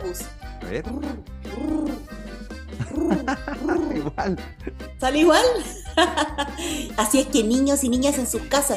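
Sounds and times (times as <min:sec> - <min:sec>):
person's voice imitating a dove's song: 0:00.0 - 0:02.2, 0:02.8 - 0:04.3
speech: 0:00.0 - 0:08.7
laughter: 0:02.8 - 0:04.4, 0:05.6 - 0:06.9.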